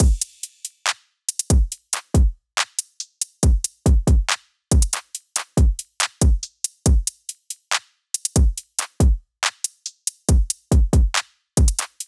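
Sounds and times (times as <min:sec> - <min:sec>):
drum loop at 140 bpm: 0:00.0 - 0:00.5, 0:03.0 - 0:07.5, 0:08.2 - 0:12.0.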